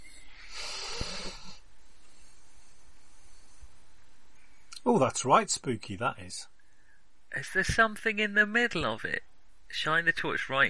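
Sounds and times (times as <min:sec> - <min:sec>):
creature heavy raspy snoring breath: 0:00.0 - 0:03.6
faint steady hiss: 0:00.0 - 0:10.6
speech: 0:05.0 - 0:06.5, 0:07.4 - 0:10.6.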